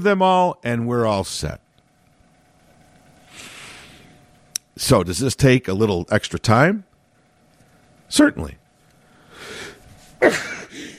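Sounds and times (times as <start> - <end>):
speech: 0.0 - 1.6, 4.8 - 6.9, 8.1 - 8.6, 10.2 - 10.9
sneeze: 10.2 - 10.6.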